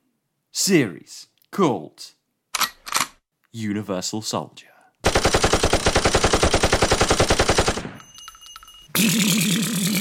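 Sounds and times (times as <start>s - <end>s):
speech: 0.6s - 2.2s, 3.6s - 4.7s, 9.0s - 9.9s
machine-gun fire from an action film: 5.0s - 8.0s.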